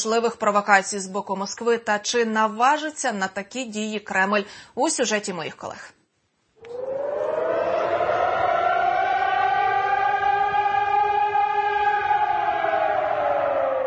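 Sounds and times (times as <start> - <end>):
speech: 0.0 - 6.0
civil defense air-raid siren wailing: 6.6 - 13.8.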